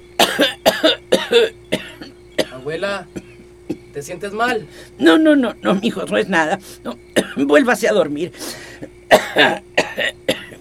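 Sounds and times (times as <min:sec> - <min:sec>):
elderly grandmother coughing harshly: 0:00.2 - 0:03.9, 0:05.7 - 0:07.5, 0:08.5 - 0:10.5
speech: 0:00.3 - 0:01.6, 0:02.7 - 0:03.2, 0:04.0 - 0:10.2.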